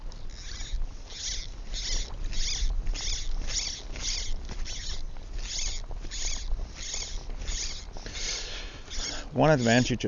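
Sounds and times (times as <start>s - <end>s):
fishing line stripped off a reel: 0.3s - 9.9s
speech: 9.4s - 10.0s.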